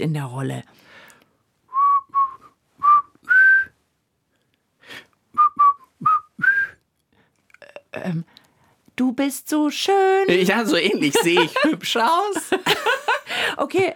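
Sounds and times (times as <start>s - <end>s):
speech: 0.0s - 0.9s, 8.0s - 8.3s, 9.0s - 13.9s
person whistling a short tune: 1.7s - 3.8s, 5.3s - 6.8s
laughter: 10.3s - 13.4s.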